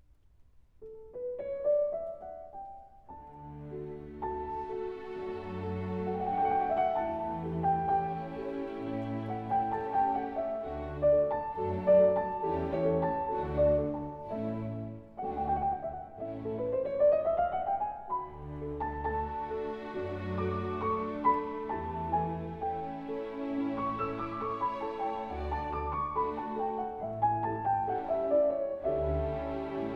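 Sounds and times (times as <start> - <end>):
piano and orchestra playing an adagio in D major: 0.9 - 29.9.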